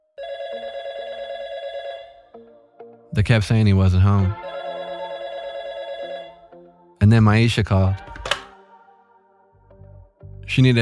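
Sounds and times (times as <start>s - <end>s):
telephone ringing: 0.1s - 2.5s, 4.3s - 6.6s
speech: 3.1s - 4.4s, 7.0s - 8.1s, 10.6s - 10.7s.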